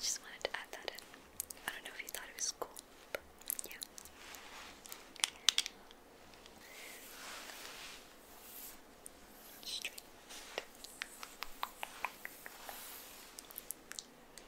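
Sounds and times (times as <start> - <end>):
quiet faint hiss: 0.0 - 14.4
soft sweeping hairbrush strokes: 4.0 - 5.2, 6.2 - 13.8
hair being brushed: 6.8 - 13.7.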